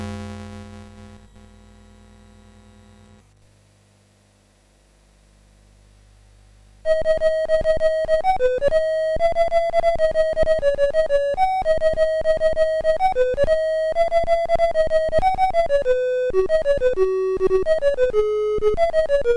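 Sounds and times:
chiptune bells on a MOS6581R2 sound chip: 6.9 - 19.3.

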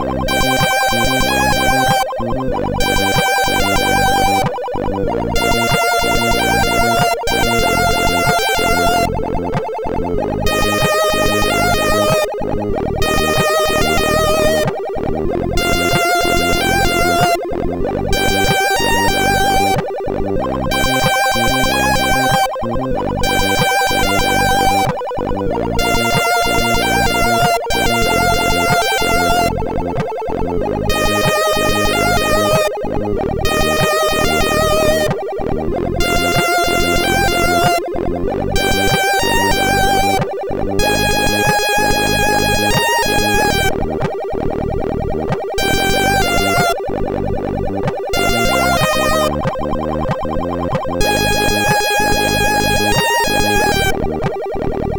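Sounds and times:
chiptune cover song on MOS6581R4 SID chip: 0.0 - 54.9.

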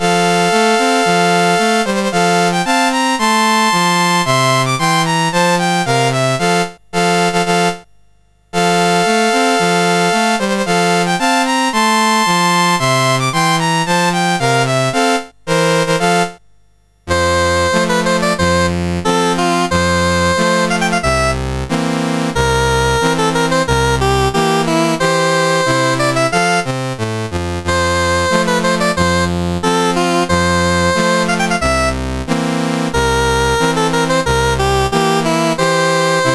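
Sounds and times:
national anthem played on CSG8580R5 sound chip: 0.0 - 7.9, 8.6 - 16.4, 17.1 - 36.3.

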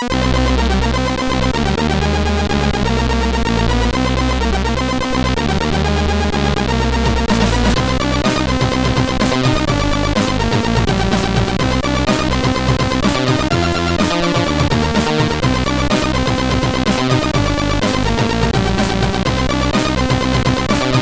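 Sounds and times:
bass beat: 0.1 - 20.9.

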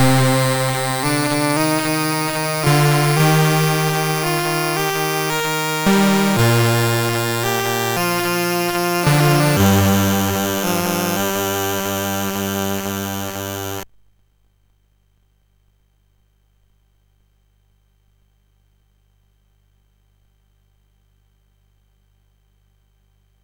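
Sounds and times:
synthesizer alert sound on a MOS6581R3 chip: 0.0 - 13.8.

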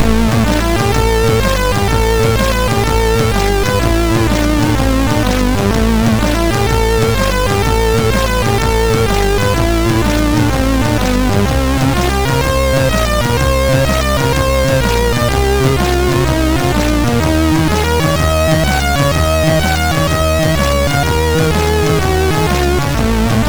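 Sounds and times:
MOS6581R3 SID chip loader music: 0.0 - 23.4.

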